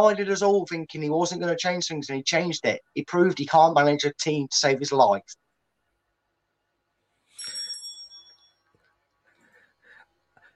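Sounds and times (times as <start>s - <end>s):
speech: 0.0s - 5.4s
bright metallic bell strike: 7.4s - 8.6s.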